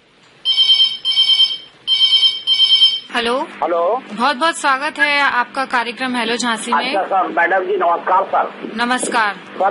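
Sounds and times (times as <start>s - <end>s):
electronic telephone ringtone for an incoming call: 0.5s - 3.1s
speech: 3.2s - 9.6s.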